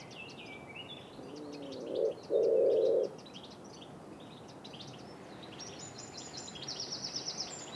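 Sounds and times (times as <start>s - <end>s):
Wood pigeon cooing and hooting: 1.3s - 3.1s.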